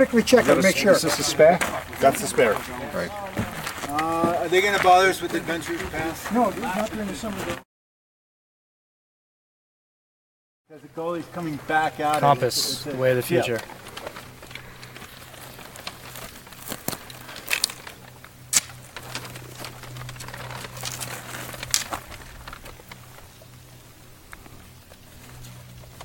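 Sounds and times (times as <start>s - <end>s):
paper maps rattling and crinkling: 0.0s - 7.6s, 11.3s - 26.0s
speech: 0.0s - 7.6s, 10.7s - 13.8s.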